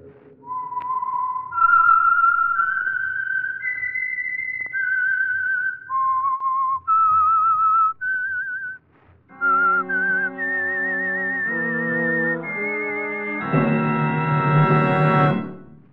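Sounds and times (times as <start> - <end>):
solo whistled melody as radio program signature signal: 0.0 - 15.9
orchestra playing the tune: 9.3 - 15.8.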